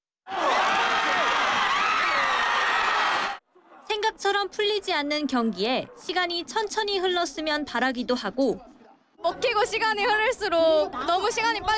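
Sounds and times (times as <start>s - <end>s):
dense outdoor street crowd cheering and exclaiming: 0.3s - 3.4s
speech: 4.2s - 11.7s.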